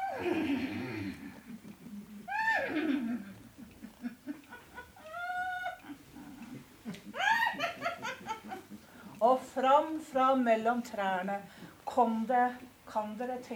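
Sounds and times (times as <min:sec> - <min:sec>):
human voice imitating a mare neighing in a forest: 0:00.0 - 0:03.4, 0:05.0 - 0:06.5
laughter: 0:02.7 - 0:09.1
speech: 0:09.7 - 0:13.5.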